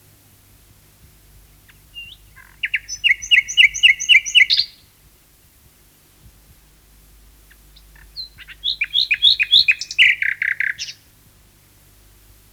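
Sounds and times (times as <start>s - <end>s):
common nightingale singing repeated chirps: 1.6s - 4.9s, 7.4s - 11.1s.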